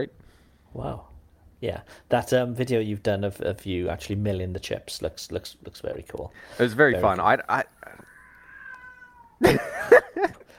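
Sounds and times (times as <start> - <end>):
speech: 0.0 - 8.0, 9.4 - 10.5
cat yowling loudly: 7.8 - 9.4
person laughing briefly: 9.4 - 10.5.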